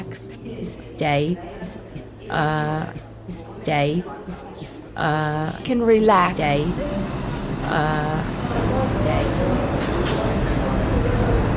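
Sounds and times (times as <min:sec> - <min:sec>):
subway station announcement voice: 0:00.0 - 0:09.9
speech: 0:00.2 - 0:09.5
uptown local subway train rumbling into station: 0:06.4 - 0:11.5.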